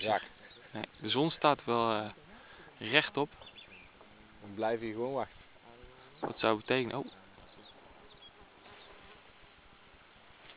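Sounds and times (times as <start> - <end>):
speech: 0.0 - 2.2, 2.8 - 3.5, 4.4 - 5.4, 6.2 - 7.2
mosquito buzzing past the microphone at a glacier: 8.0 - 9.3.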